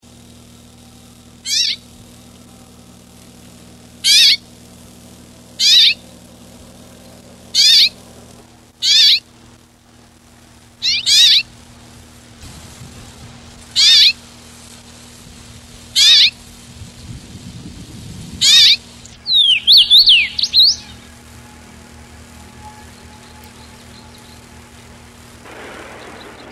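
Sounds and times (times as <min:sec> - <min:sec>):
Carpodacus erythrinus: 0:01.4 - 0:01.8, 0:04.0 - 0:04.4, 0:05.6 - 0:06.2, 0:07.5 - 0:08.0, 0:08.8 - 0:09.3, 0:10.8 - 0:11.5, 0:13.7 - 0:14.2, 0:15.9 - 0:16.4, 0:18.4 - 0:26.5.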